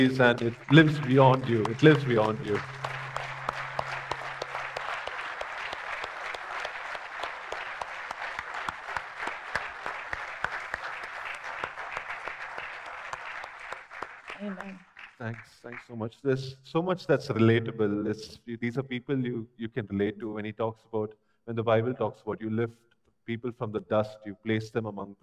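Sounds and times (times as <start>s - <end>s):
speech: 0.0s - 2.8s, 15.9s - 25.2s
crowd applauding: 0.0s - 16.2s.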